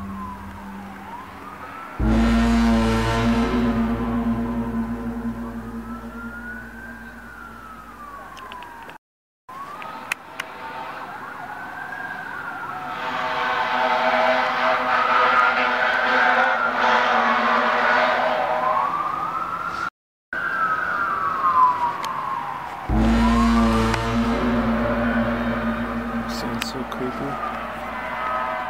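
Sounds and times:
police cars driving around: 0:00.0 - 0:08.1, 0:13.0 - 0:19.0, 0:22.9 - 0:28.6
police sirens wailing: 0:00.0 - 0:28.6
street noise: 0:00.0 - 0:28.6.

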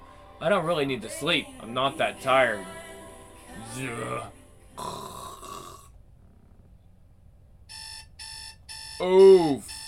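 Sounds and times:
speech: 0:00.4 - 0:02.8, 0:03.6 - 0:05.0, 0:09.0 - 0:09.7
alarm clock with bright electronic beeps: 0:07.7 - 0:09.8.

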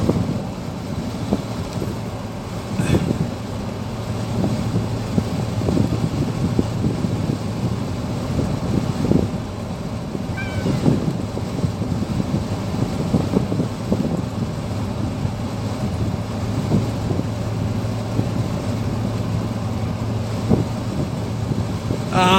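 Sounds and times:
low rumbling outdoor noise: 0:00.0 - 0:22.3
wind: 0:00.0 - 0:22.3
cat meowing: 0:10.3 - 0:11.1.

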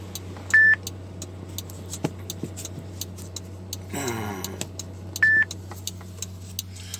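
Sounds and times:
low engine hum: 0:00.0 - 0:06.9
faint regular ticking: 0:00.1 - 0:06.9
electronic timer beeping: 0:00.5 - 0:00.9, 0:05.2 - 0:05.6.

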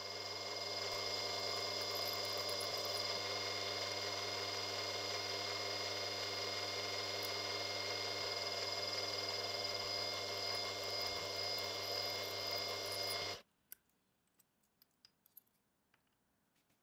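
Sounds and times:
small power drill drilling pinholes in metal pliers handle pieces: 0:00.0 - 0:13.4.

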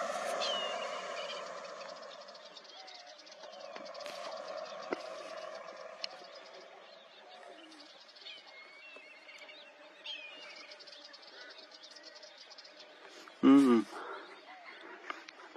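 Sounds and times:
big saltwater crocodile guttural call: 0:00.0 - 0:02.7, 0:03.3 - 0:07.1
birds outdoors: 0:00.0 - 0:15.5.

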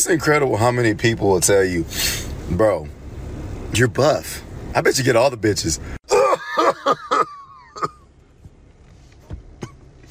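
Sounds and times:
speech: 0:00.0 - 0:03.0, 0:03.7 - 0:06.0
breaths: 0:01.9 - 0:02.4
harsh voiced coughs: 0:06.1 - 0:08.0.

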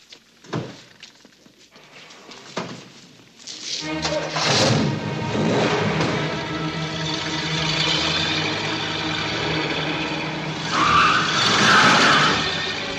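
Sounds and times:
car tires squealing: 0:03.8 - 0:12.9
modified car engine roaring with pressure boost: 0:03.8 - 0:12.9.

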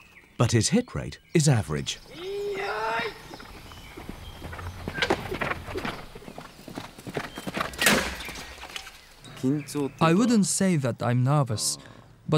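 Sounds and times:
speech: 0:00.4 - 0:03.2, 0:09.4 - 0:12.3
horse hooves at full gallop during a mounted archery display: 0:02.0 - 0:09.0.

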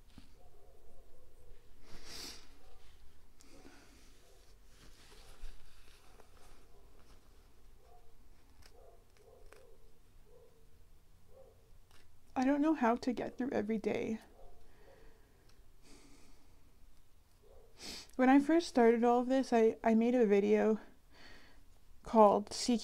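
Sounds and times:
soft hiss: 0:00.0 - 0:22.8
person blowing nose: 0:01.8 - 0:02.6, 0:17.8 - 0:18.1
speech: 0:12.6 - 0:14.3, 0:18.2 - 0:20.9, 0:22.1 - 0:22.8.

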